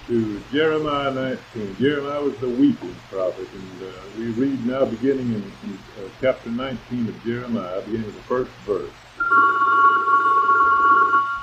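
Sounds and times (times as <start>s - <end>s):
speech: 0.1s - 9.9s
telephone ringing with a buzzing electronic tone: 9.2s - 11.4s.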